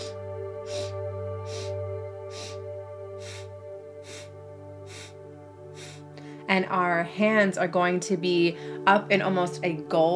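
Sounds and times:
four-count breathing in and out through the nose: 0.0 - 6.5
low tonal background: 0.0 - 10.1
speech: 6.5 - 10.1.

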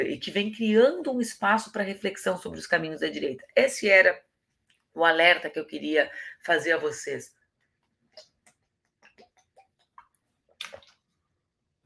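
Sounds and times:
speech: 0.0 - 4.3, 5.0 - 7.4
person drinking water straight from a bottle: 7.8 - 11.3.

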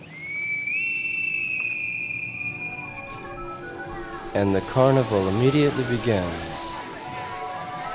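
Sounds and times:
shrill sustained whistle: 0.0 - 4.1
speech: 4.4 - 6.7.

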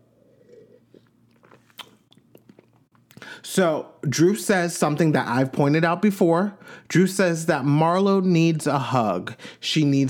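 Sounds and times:
person sipping water: 0.0 - 3.3
swallowing: 0.0 - 3.3
speech: 3.3 - 10.0.

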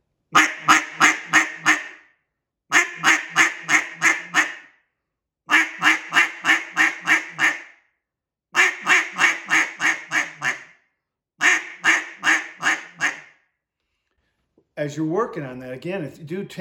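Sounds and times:
cut-down duck call blown in single quacking notes: 0.3 - 2.0, 2.7 - 4.7, 5.5 - 7.7, 8.6 - 10.7, 11.4 - 13.3
speech: 14.9 - 16.6.

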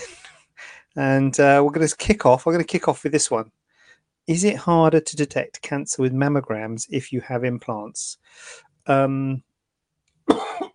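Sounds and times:
speech: 1.0 - 3.6, 4.3 - 9.5
person clearing throat: 10.3 - 10.7
person coughing: 10.3 - 10.7.

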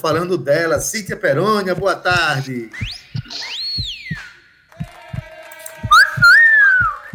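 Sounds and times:
speech: 0.0 - 3.5
steady rhythmic low thumping: 0.0 - 7.1
person whistling melodic glides: 2.8 - 4.3, 5.9 - 7.1.

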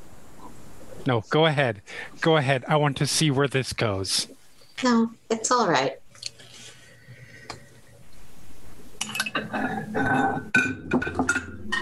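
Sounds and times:
speech: 1.0 - 6.0, 9.5 - 11.4
bowls of ice cream and spoons clinking while carried: 9.0 - 11.8.

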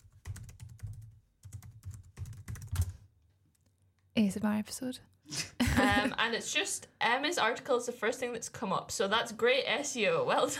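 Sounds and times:
typing on a computer keyboard: 0.0 - 3.7
speech: 4.2 - 10.5.

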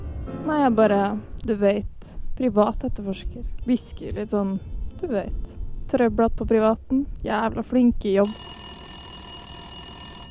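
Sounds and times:
speech: 0.5 - 8.6
telephone ringing with bright metallic tone: 8.2 - 10.2.

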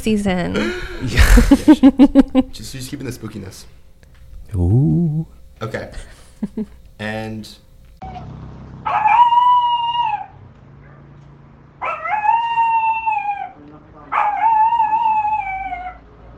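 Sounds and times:
speech: 0.0 - 3.8, 4.5 - 9.1
laughter: 0.6 - 2.6, 6.4 - 6.8
small dog such as a chihuahua whining and howling: 8.9 - 10.4, 11.8 - 16.1.

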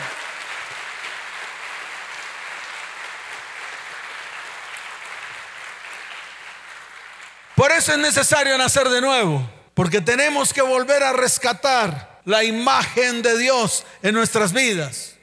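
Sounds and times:
audience applauding in a large room: 0.0 - 8.1
speech: 7.6 - 15.1.

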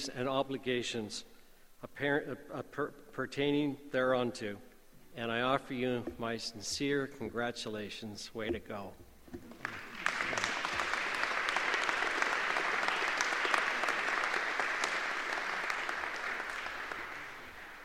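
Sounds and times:
speech: 0.0 - 9.8
large audience applause at a graduation ceremony: 9.5 - 17.8.

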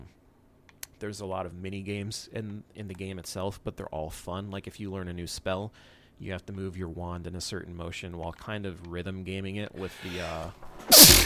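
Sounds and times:
speech: 1.0 - 11.2
quiet inhale before a sneeze: 5.7 - 6.2
sneeze: 10.9 - 11.2.

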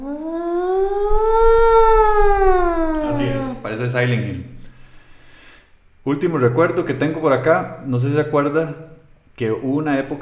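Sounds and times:
school alarm siren wailing: 0.0 - 3.7
speech: 3.8 - 4.5, 6.0 - 10.2.

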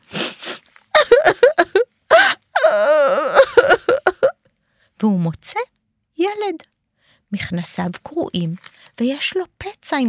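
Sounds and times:
voice imitating a hurt boy crying and wailing in a stairwell: 1.0 - 4.3
speech: 5.0 - 6.7, 7.3 - 10.0.

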